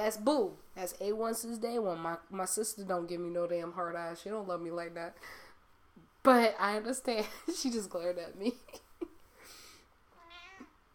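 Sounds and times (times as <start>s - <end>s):
speech: 0.0s - 5.4s, 6.2s - 8.9s
domestic cat meowing: 10.2s - 10.8s.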